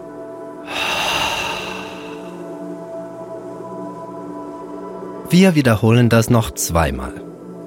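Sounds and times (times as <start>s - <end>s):
soft steady music: 0.0s - 7.6s
deep breath through the mouth: 0.6s - 2.4s
speech: 5.3s - 7.3s.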